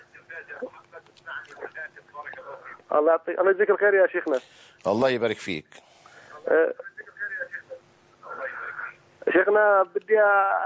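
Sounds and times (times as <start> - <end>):
tinny television voices during a phone call: 0.0 - 10.6
speech: 2.9 - 5.8, 6.5 - 6.9, 9.3 - 10.6.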